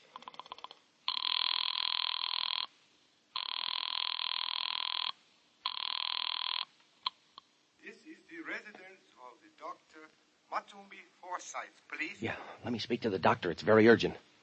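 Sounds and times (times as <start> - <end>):
telephone ringing after a number is dialed: 0.4 - 2.7, 3.4 - 6.7
speech: 10.0 - 14.3.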